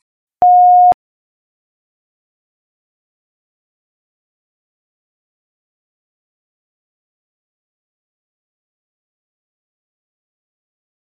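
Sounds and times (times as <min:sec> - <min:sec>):
answering machine steady electronic beep: 0:00.4 - 0:01.0.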